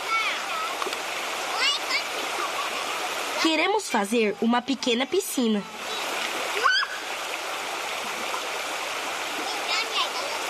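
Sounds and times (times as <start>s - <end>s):
river water flowing: 0.0s - 10.4s
speech: 3.4s - 5.8s.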